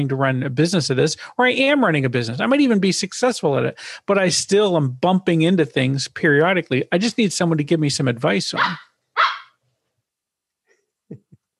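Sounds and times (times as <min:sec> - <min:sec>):
speech: 0:00.0 - 0:08.9
puppy barking on a chair: 0:08.5 - 0:09.6.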